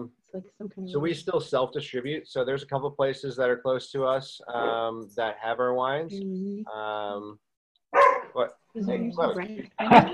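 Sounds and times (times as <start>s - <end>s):
speech: 0.0s - 7.5s, 8.4s - 10.1s
winery dog barking: 7.9s - 8.4s
laughter: 9.6s - 10.1s.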